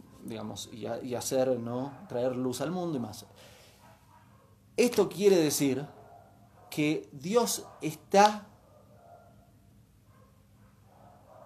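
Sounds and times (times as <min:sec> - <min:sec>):
faint dogs barking: 0:00.0 - 0:11.4
speech: 0:00.2 - 0:03.6, 0:04.8 - 0:06.0, 0:06.7 - 0:08.5.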